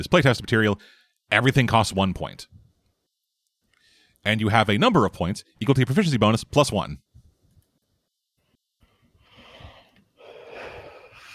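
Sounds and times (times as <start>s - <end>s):
speech: 0.0s - 2.6s, 4.2s - 7.0s
heavy rasping breathing from asthma: 8.8s - 11.3s.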